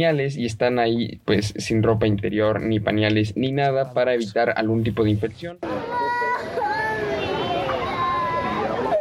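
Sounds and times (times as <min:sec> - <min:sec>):
speech: 0:00.0 - 0:05.8
busy background of other voices and commotion: 0:00.0 - 0:08.9
several young children wailing and sobbing: 0:05.6 - 0:08.9.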